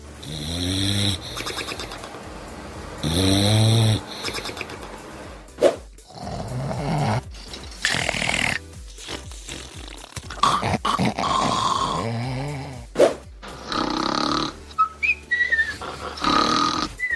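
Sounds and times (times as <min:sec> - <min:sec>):
person snoring loudly: 0:00.2 - 0:02.0, 0:03.0 - 0:04.6, 0:06.0 - 0:13.0, 0:13.5 - 0:14.7, 0:15.8 - 0:17.0.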